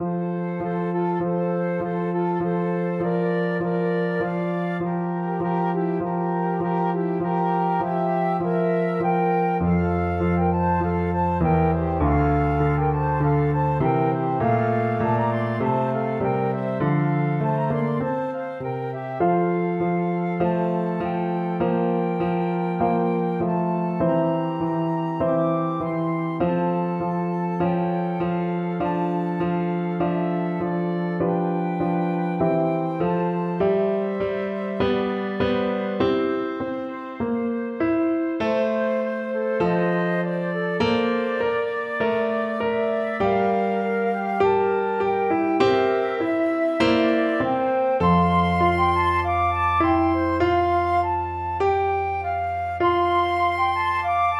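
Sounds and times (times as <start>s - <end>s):
flute duet: 0.0s - 54.3s.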